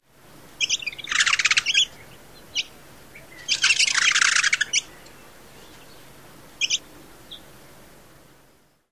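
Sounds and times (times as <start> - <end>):
Canyon Towhee outburst of notes: 0.6 - 5.1, 6.6 - 7.4.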